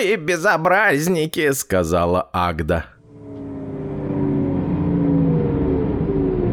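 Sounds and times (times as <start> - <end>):
speech: 0.0 - 3.0
bus engine rumbling as it pulls in and idles: 3.0 - 6.5.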